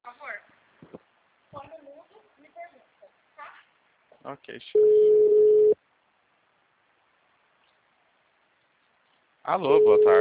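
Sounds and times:
speech: 4.3 - 5.5, 9.5 - 10.1
phone call ringing tone: 4.8 - 5.8, 9.8 - 10.1.

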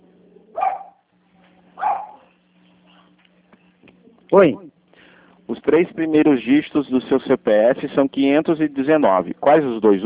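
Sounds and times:
low steady hum: 0.0 - 10.0
dog barking: 0.5 - 1.0, 1.8 - 2.3
speech: 4.3 - 4.6, 5.6 - 10.0.

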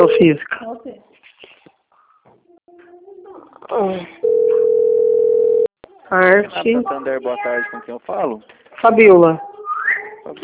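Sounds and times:
speech: 0.0 - 1.0, 3.7 - 4.2, 6.1 - 9.5, 10.3 - 10.4
telephone call tone from a bank calling: 4.2 - 5.7.

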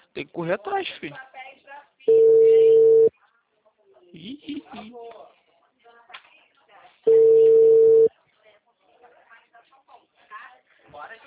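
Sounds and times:
speech: 0.2 - 1.3, 2.0 - 2.4, 4.1 - 5.3
telephone ringback tone while waiting for an answer: 2.1 - 3.1, 7.1 - 8.1.

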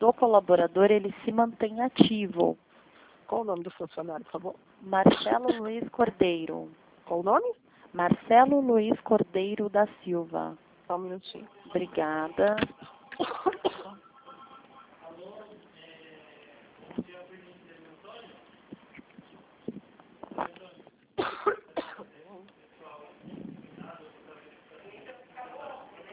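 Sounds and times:
speech: 0.0 - 2.7, 3.3 - 13.6
harsh coughing bursts: 13.2 - 14.0, 21.2 - 22.1.

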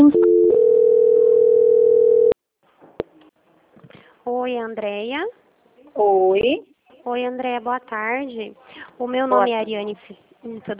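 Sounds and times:
telephone dial tone after a dropped call: 0.1 - 2.4
speech: 4.5 - 5.4, 6.0 - 10.7.

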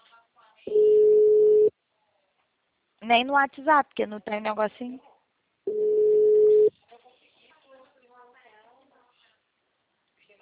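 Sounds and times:
unanswered telephone call electronic ringback tone: 0.7 - 1.7, 5.7 - 6.7
speech: 3.1 - 5.1.

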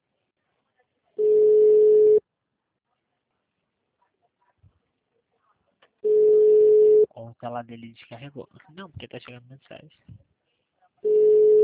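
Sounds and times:
busy tone on a phone line after a dropped call: 1.2 - 2.2, 6.0 - 7.1, 11.0 - 11.6
speech: 7.3 - 10.3.

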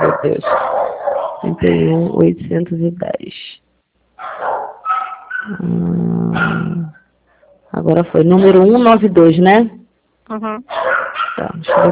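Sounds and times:
neighbor's dogs barking: 0.0 - 1.5, 4.2 - 5.6, 6.3 - 7.0, 10.7 - 11.9
speech: 0.2 - 0.8, 1.4 - 3.5, 5.4 - 7.0, 7.7 - 11.9.

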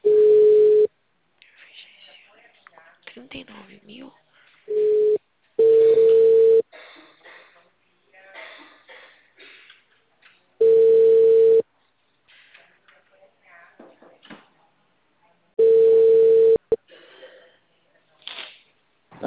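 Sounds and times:
telephone line tone after a dropped call: 0.0 - 0.9, 4.7 - 6.6, 10.6 - 11.6, 15.6 - 16.8
speech: 3.2 - 4.9.

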